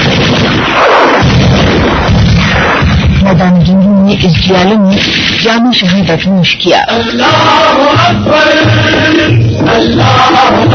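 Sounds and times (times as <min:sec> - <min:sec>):
machine gun fire from an enemy tank on a battlefield: 0:00.0 - 0:03.5
speech: 0:04.2 - 0:10.7.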